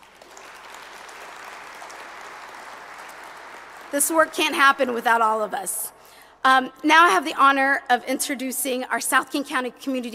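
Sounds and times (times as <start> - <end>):
audience applause: 0.0 - 4.5
speech: 3.9 - 10.1.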